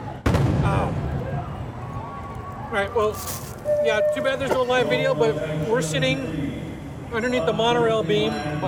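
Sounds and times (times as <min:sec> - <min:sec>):
fireworks booming outdoors: 0:00.2 - 0:01.2
speech: 0:02.8 - 0:08.6.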